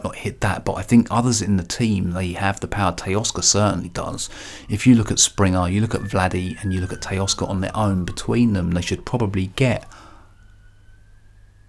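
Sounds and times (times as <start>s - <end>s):
speech: 0.0s - 10.0s
low traffic rumble: 0.0s - 10.2s
emergency siren wailing: 4.2s - 11.6s.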